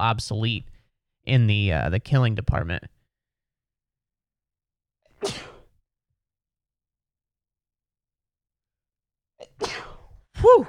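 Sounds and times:
speech: 0:00.0 - 0:02.9, 0:10.4 - 0:10.6
person sneezing: 0:05.1 - 0:05.8, 0:09.4 - 0:10.6.

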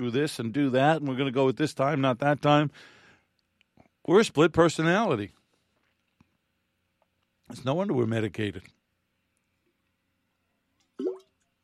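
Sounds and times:
speech: 0:00.0 - 0:03.0, 0:04.0 - 0:05.4, 0:07.5 - 0:08.8
person gulping water while drinking: 0:11.0 - 0:11.4.

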